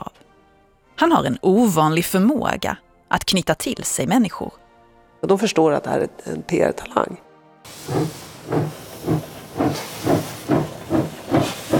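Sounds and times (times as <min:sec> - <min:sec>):
speech: 0:01.0 - 0:04.6, 0:05.2 - 0:08.8
steam locomotive puffing as the train pulls away from the platform in Zürich: 0:07.7 - 0:11.7.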